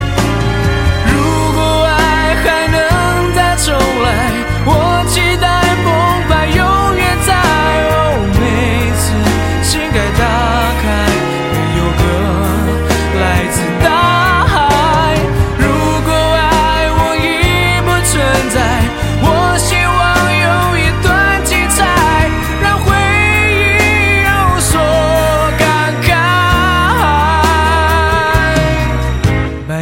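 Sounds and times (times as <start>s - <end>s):
piano: 0.0s - 29.8s.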